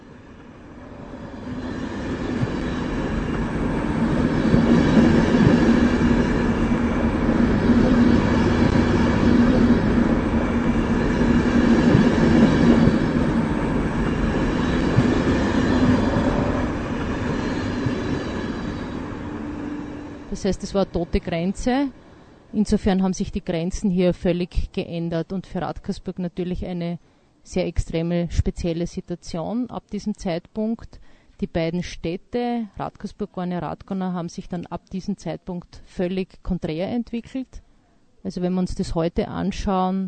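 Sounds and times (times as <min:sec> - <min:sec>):
train rumbling past through a station: 0:00.0 - 0:23.6
speech: 0:20.4 - 0:37.6, 0:38.2 - 0:40.0.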